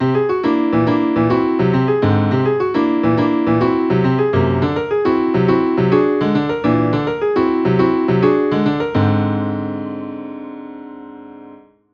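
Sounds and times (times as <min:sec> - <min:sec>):
jazz symmetrical scales played: 0:00.0 - 0:10.2.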